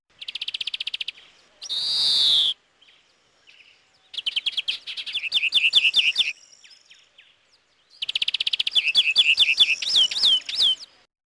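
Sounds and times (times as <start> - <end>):
European greenfinch: 0.1 - 11.0.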